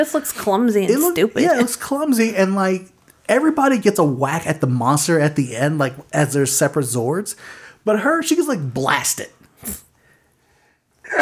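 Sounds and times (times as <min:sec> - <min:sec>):
speech: 0:00.0 - 0:09.8
sharp loud sneeze: 0:09.6 - 0:09.9.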